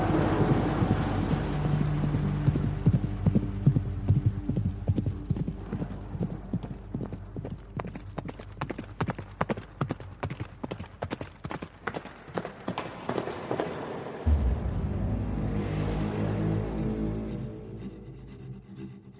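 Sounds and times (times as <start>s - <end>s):
low rumble of wind or movement: 0.0s - 8.2s, 14.2s - 19.0s
horses' hooves clip-clopping: 0.0s - 14.2s.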